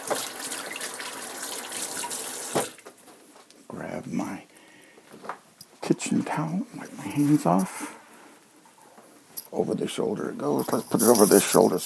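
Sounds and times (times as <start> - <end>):
water running from a kitchen sink tap: 0.0 - 2.8
speech: 5.9 - 7.9, 9.5 - 11.8.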